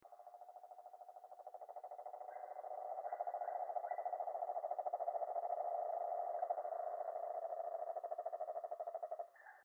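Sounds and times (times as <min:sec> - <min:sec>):
Rhinella horribilis toad calling: 0:00.0 - 0:09.6.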